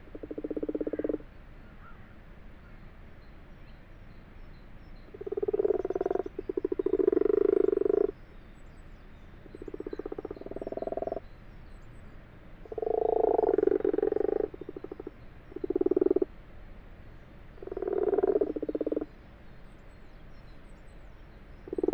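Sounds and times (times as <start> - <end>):
Common frogs croaking in an abandoned water-filled wash house in Fourcinet, France: 0.0 - 1.3, 5.0 - 8.3, 9.4 - 11.3, 12.6 - 16.4, 17.5 - 19.2, 21.5 - 21.9.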